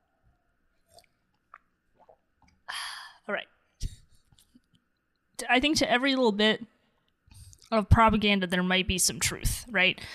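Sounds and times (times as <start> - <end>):
soft wet slurps and swallows: 0.8 - 2.6
person sipping water: 0.8 - 2.7
speech: 3.3 - 3.5, 5.5 - 6.7, 7.7 - 10.1.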